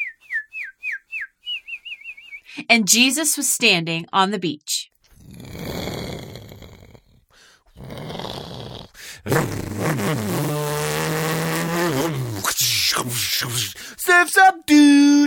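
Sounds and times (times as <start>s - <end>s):
person whistling birdlike chirps: 0.0s - 2.5s
speech: 2.6s - 4.9s, 13.0s - 15.2s
voice imitating a motorboat engine revving: 7.8s - 13.8s.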